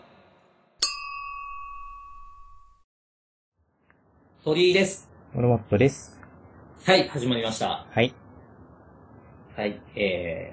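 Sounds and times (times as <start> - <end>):
glasses clinking in a toast: 0.8 - 2.8
speech: 4.4 - 6.2, 6.8 - 8.2, 9.6 - 10.5.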